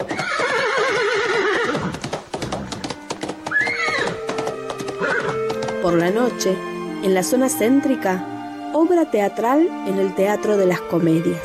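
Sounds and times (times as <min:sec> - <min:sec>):
horses neighing at a horse race in Buenos Aires: 0:00.0 - 0:06.0
clattering clip-clop of horse hooves at a horse race: 0:00.0 - 0:06.5
speech: 0:05.8 - 0:11.4.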